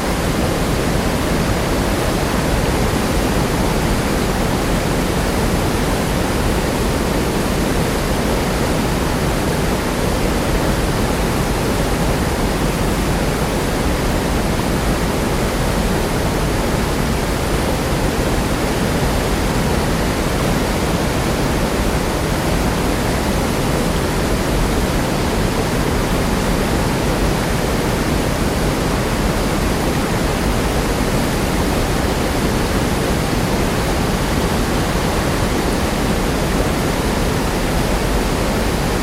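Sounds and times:
waterfall roaring: 0.0 - 39.0.

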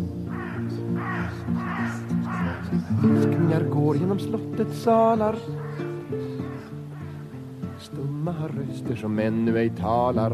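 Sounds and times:
crows cawing: 0.0 - 3.4, 5.2 - 8.0
speech: 2.7 - 6.3, 8.2 - 10.3.

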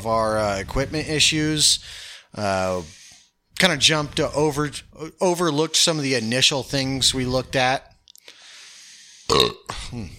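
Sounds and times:
speech: 0.0 - 3.0, 3.6 - 7.9, 9.3 - 10.1
faint steady hiss: 0.0 - 10.1
short belch with a croaky voiced rumble: 9.3 - 9.9
loud burp: 9.3 - 10.1.

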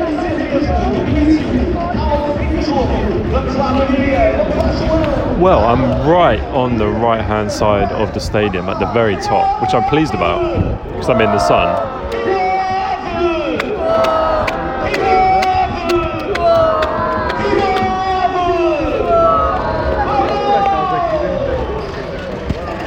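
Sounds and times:
crowd murmur: 0.0 - 22.8
speech: 5.4 - 12.3
people shouting: 7.9 - 22.8
people clapping: 11.0 - 22.8.

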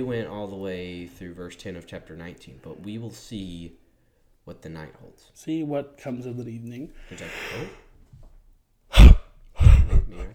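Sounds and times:
speech: 0.0 - 3.8, 4.5 - 7.8
stifled yawn: 7.0 - 7.9, 8.9 - 10.3.

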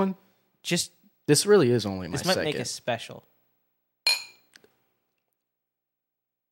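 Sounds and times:
speech: 0.0 - 3.3
glasses clinking together in a toast: 4.1 - 4.6.

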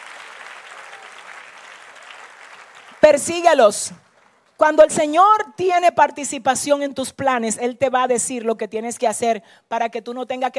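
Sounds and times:
congregation applauding during a church sermon: 0.0 - 4.6
speech: 3.1 - 4.0, 4.6 - 10.5.

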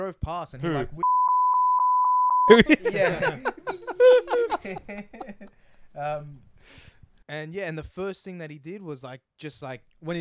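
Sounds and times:
speech: 0.0 - 1.1, 2.5 - 10.1
high electronic censor bleep: 1.0 - 2.6
laughter: 2.5 - 6.0.

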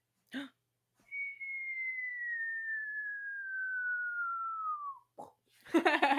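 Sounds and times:
person imitating whistling firecracker: 1.1 - 5.1.

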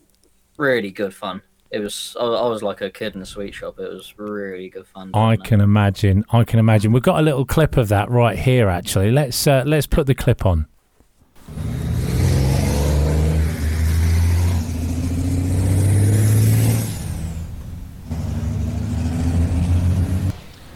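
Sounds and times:
speech: 0.6 - 10.8
heavy truck engines revving at a race circuit: 11.4 - 20.7.

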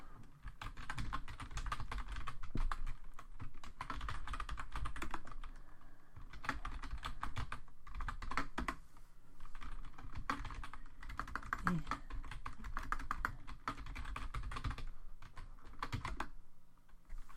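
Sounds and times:
typing on a computer keyboard: 0.2 - 5.6, 6.2 - 8.8, 9.4 - 16.4.

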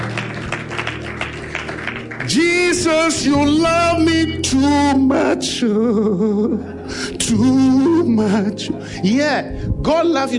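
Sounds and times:
crowd clapping: 0.0 - 3.3
speech: 2.3 - 10.3.

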